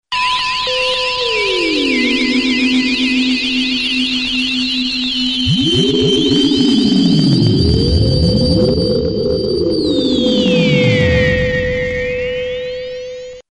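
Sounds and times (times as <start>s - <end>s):
1960s sci-fi synth: 1.0s - 13.4s.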